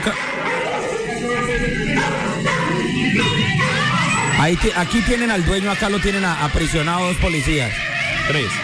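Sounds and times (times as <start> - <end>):
speech: 0.0 - 0.3, 1.2 - 3.6, 4.4 - 8.6
dog in a played video barking and yipping as it bites a man: 0.0 - 4.5
crowd commotion: 0.0 - 8.6.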